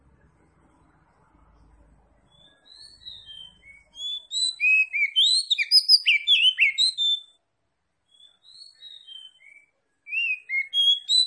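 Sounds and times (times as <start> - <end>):
oriental magpie-robin singing vigorously in Tretes: 2.2 - 7.4, 8.0 - 11.2.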